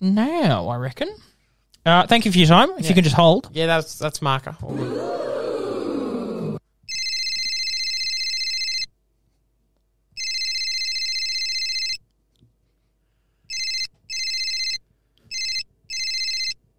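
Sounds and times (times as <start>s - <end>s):
speech: 0.0s - 5.3s
phone ringing with a shrill electronic tone: 6.9s - 8.9s, 10.2s - 12.0s, 13.5s - 16.6s.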